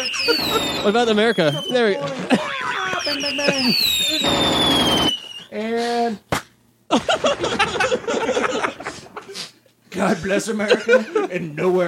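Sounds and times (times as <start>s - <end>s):
high whistling tone: 0.0s - 2.0s, 2.7s - 5.6s
laughter: 0.0s - 4.2s, 6.9s - 9.5s, 10.1s - 11.7s
fireworks display finale bangs: 0.0s - 5.4s
speech: 0.2s - 2.5s, 3.1s - 4.7s, 6.9s - 8.7s, 10.0s - 11.8s.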